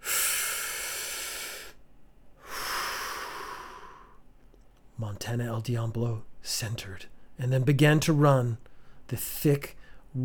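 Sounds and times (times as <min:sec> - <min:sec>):
man taking a deep breath before a pole-vault jump: 0:00.0 - 0:01.8, 0:02.4 - 0:04.2, 0:08.7 - 0:09.1, 0:09.8 - 0:10.1
man's breathy exhale before a pole-vault jump: 0:00.0 - 0:01.8, 0:02.4 - 0:04.2
speech: 0:05.0 - 0:10.2.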